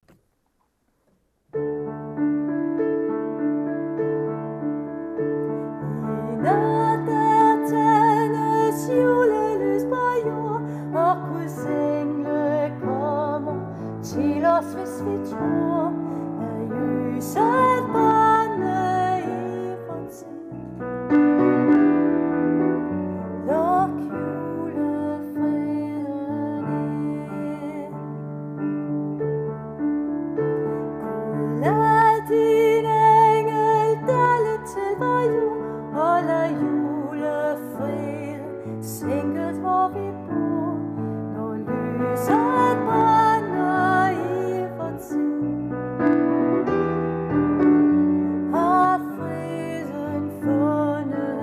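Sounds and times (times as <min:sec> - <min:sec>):
soprano singing: 0:01.8 - 0:51.4.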